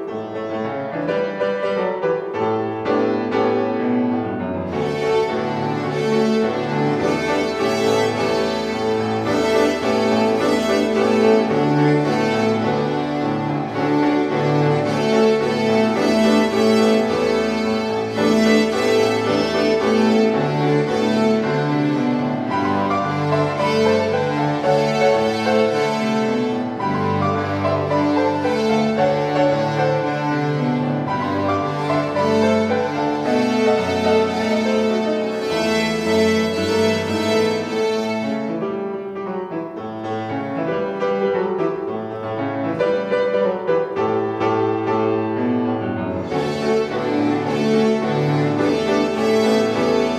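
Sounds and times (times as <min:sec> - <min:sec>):
samba played on open strings: 0:00.2 - 0:50.1.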